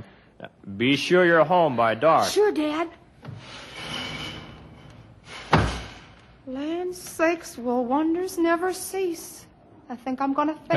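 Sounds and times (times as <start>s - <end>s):
speech: 0.7s - 3.0s, 6.5s - 10.7s
door eased shut with soft thud: 5.4s - 6.1s.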